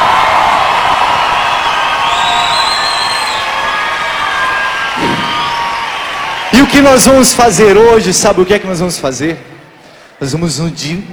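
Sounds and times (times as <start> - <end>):
audience applauding: 0.0 - 7.8
speech: 6.6 - 9.5, 10.2 - 11.1.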